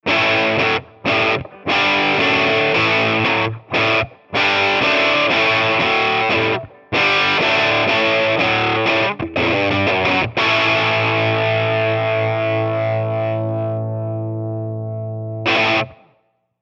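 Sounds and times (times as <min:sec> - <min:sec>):
rock electric guitar: 0:00.0 - 0:16.2.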